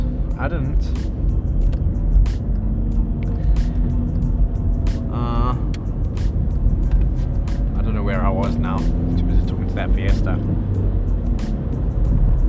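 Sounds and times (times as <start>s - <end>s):
car driving on a road heard from inside: 0.0s - 12.4s
speech: 0.4s - 1.4s, 9.8s - 11.6s.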